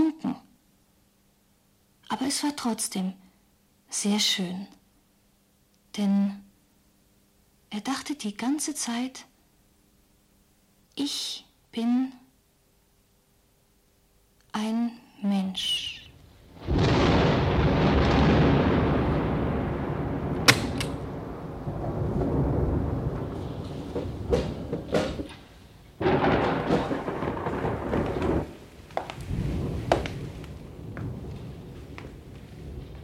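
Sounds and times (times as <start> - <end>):
speech: 2.2 - 3.2, 3.9 - 4.8, 6.0 - 6.5, 7.7 - 9.3, 11.0 - 12.2, 14.6 - 16.0
heavy continuous thunder rumbling: 16.1 - 33.0
steady wash of rain: 16.2 - 33.0.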